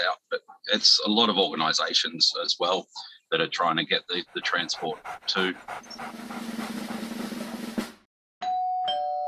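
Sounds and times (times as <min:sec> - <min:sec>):
speech: 0:00.0 - 0:06.8
rough busy noise: 0:04.2 - 0:08.0
doorbell two-note ding-dong chime: 0:08.4 - 0:09.2.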